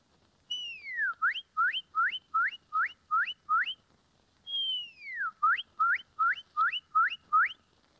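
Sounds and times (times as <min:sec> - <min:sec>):
woman whistling an imitation of a cardinal song: 0:00.5 - 0:03.8, 0:04.5 - 0:07.6.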